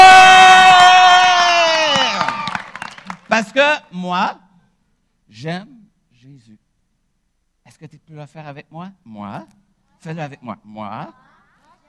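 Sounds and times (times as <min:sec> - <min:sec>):
group of children cheering with a long loud sustained shout: 0:00.0 - 0:03.1
children clapping: 0:00.8 - 0:03.4
speech: 0:04.0 - 0:04.5, 0:05.3 - 0:06.6, 0:07.7 - 0:11.2.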